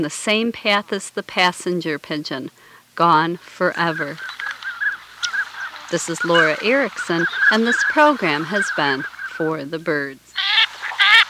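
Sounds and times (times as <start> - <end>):
speech: 0.0 - 4.4, 5.9 - 10.4
Northern Pintail calls: 3.1 - 11.2.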